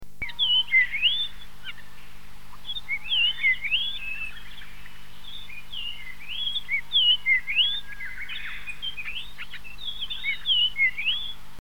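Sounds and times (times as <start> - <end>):
Japanese grosbeak singing clear whistled phrases: 0.2 - 1.9, 2.6 - 11.4.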